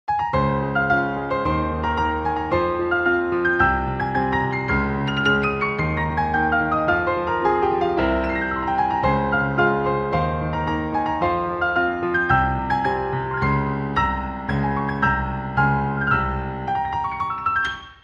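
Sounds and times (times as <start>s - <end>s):
solo piano: 0.1s - 18.0s.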